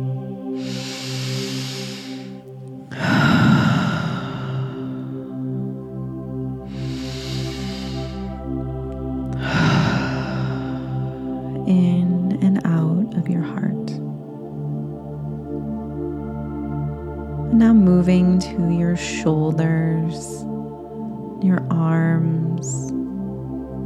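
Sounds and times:
soft tonal background: 0.0 - 23.8
deep breathing during a breathwork exercise for post-workout recovery: 0.5 - 12.2
speech: 19.2 - 20.2.

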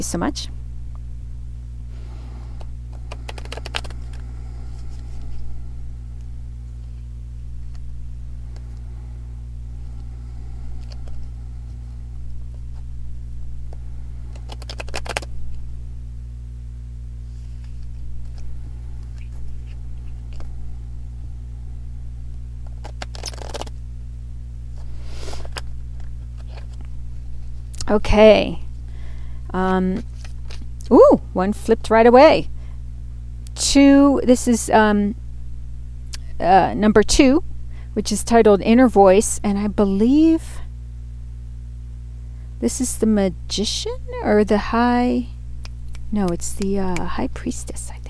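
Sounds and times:
speech: 0.0 - 0.6, 27.9 - 28.6, 29.5 - 30.1, 30.9 - 32.5, 33.6 - 35.2, 36.4 - 40.6, 42.6 - 45.4, 46.1 - 48.0
low electrical hum: 0.0 - 48.0
deck of cards being shuffled: 2.5 - 5.6, 9.8 - 15.6, 17.2 - 20.7, 22.6 - 23.8, 24.7 - 28.0, 29.9 - 30.8, 45.9 - 47.9.

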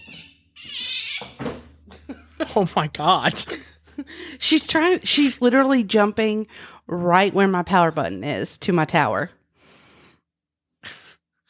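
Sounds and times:
cat meowing: 0.0 - 1.4
speech: 2.4 - 9.4.

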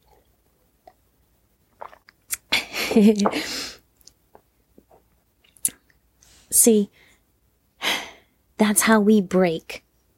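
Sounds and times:
person sipping tea: 1.7 - 2.5, 3.1 - 5.8
speech: 2.9 - 3.7, 6.6 - 7.1, 8.6 - 9.8.

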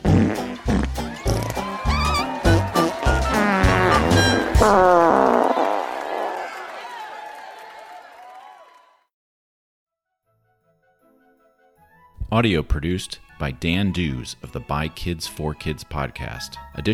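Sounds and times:
sputtering fart noises: 0.0 - 6.6
speech: 12.4 - 16.9.

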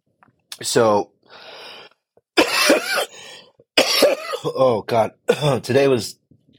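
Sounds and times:
speech: 0.6 - 1.5, 4.4 - 6.2
harsh wet coughs: 2.4 - 3.2, 3.8 - 5.6.

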